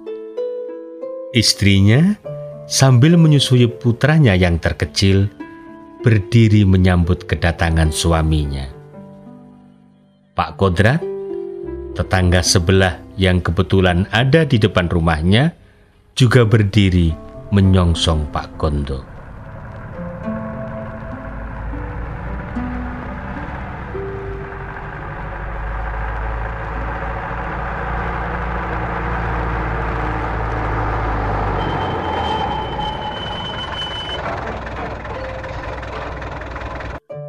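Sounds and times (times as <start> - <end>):
speech: 1.3 - 5.4, 6.0 - 8.8, 10.4 - 11.1, 12.0 - 15.6, 16.2 - 19.1
big truck engine idling in front of a house: 17.1 - 37.0.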